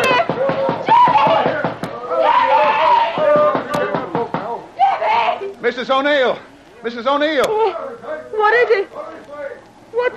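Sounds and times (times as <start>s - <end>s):
knocking on a cabin door aboard a ship: 0.0s - 1.9s, 3.1s - 4.6s
voices calling out: 0.0s - 10.1s
speech: 5.8s - 9.0s, 9.9s - 10.1s.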